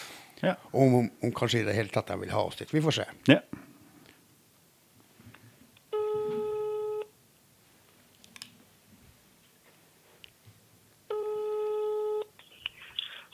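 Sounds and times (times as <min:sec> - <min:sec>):
speech: 0:00.4 - 0:03.6
telephone ringback tone before call is answered: 0:05.9 - 0:07.1, 0:11.1 - 0:12.3.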